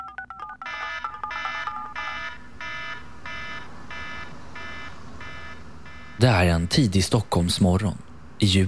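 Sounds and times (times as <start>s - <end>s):
phone alarm with bright electronic beeping bursts: 0.0s - 6.1s
speech: 6.2s - 8.6s.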